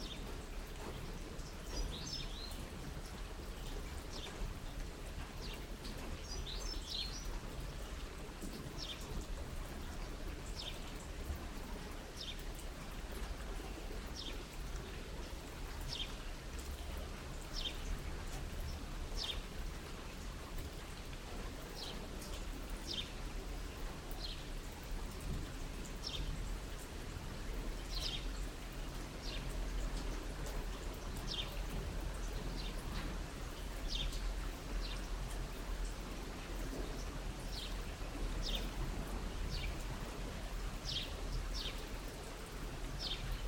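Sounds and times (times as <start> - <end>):
rain: 0.0 - 43.4.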